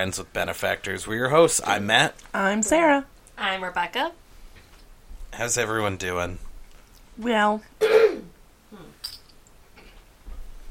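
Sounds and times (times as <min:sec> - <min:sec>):
speech: 0:00.0 - 0:04.2, 0:05.3 - 0:06.5, 0:07.2 - 0:07.8
single short cough: 0:07.8 - 0:08.4.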